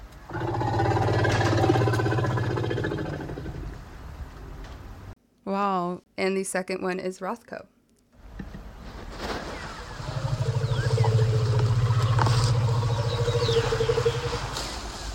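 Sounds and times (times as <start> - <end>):
faint outdoor ambience: 0.0 - 15.1
female elephant rumble call: 0.3 - 3.9, 9.1 - 15.1
speech: 6.2 - 7.8.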